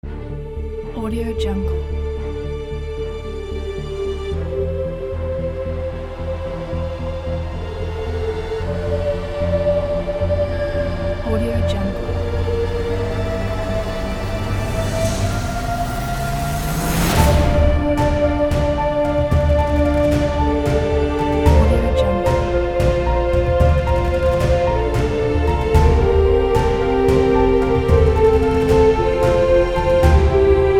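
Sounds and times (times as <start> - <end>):
powerful emotional epic trailer music: 0.0 - 30.7.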